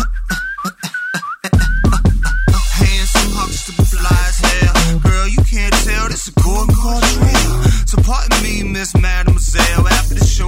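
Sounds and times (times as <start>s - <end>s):
person whistling a melody: 0.0s - 5.4s
regular drum beat with deep bass hits: 0.0s - 10.4s.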